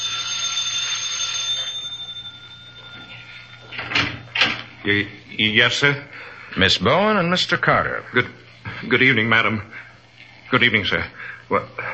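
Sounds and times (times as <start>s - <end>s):
doorbell ringing with a shrill metallic tone: 0.0s - 4.6s
low hum: 0.0s - 11.9s
door noises: 3.7s - 4.8s
speech: 4.8s - 9.8s, 10.5s - 11.9s.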